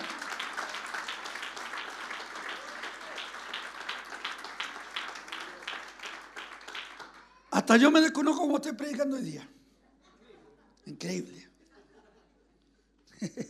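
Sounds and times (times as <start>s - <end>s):
congregation applauding: 0.0s - 8.3s
speech: 7.6s - 9.6s, 11.0s - 11.5s
laughter: 9.8s - 10.8s, 11.5s - 13.4s.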